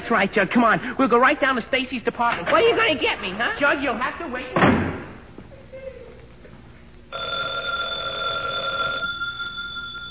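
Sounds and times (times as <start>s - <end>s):
speech: 0.1s - 4.8s
telephone bell ringing: 7.1s - 10.0s.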